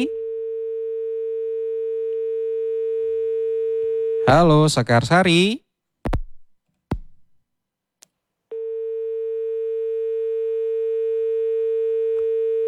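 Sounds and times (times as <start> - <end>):
steady telephone line tone on a failed call-in connection: 0.0 - 4.4, 8.5 - 12.6
speech: 4.3 - 5.6.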